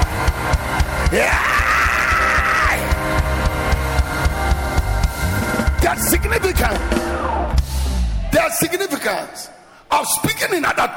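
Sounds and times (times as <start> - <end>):
steady thumping beat: 0.0 - 8.3
large church audience screaming and cheering in agreement with a sermon: 0.0 - 9.1
speech: 1.1 - 1.4, 8.6 - 10.9.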